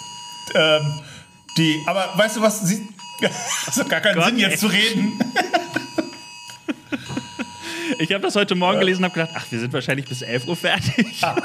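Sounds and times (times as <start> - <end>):
phone alarm chirping: 0.0 - 11.4
steady high tone: 0.0 - 11.4
speech: 0.5 - 5.5, 8.0 - 11.4
laughter: 3.2 - 9.1, 10.7 - 11.4.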